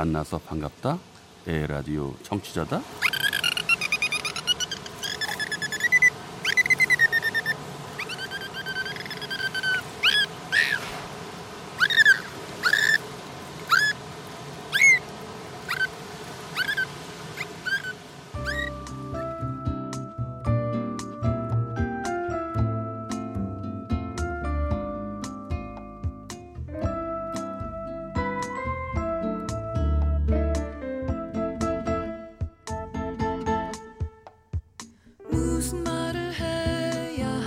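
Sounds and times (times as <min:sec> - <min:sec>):
speech: 0:00.0 - 0:03.0
dolphin vocalizing with whistles and squeaks: 0:03.0 - 0:10.9, 0:11.8 - 0:13.0, 0:13.7 - 0:14.0, 0:14.7 - 0:15.0, 0:15.7 - 0:15.9, 0:16.5 - 0:18.8
music: 0:18.4 - 0:37.4.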